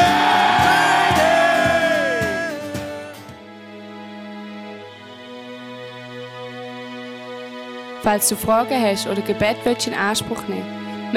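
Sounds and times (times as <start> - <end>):
large audience shouting a collective war cry: 0.0 - 2.7
steady pounding beat: 0.0 - 3.2
speech: 8.0 - 10.9.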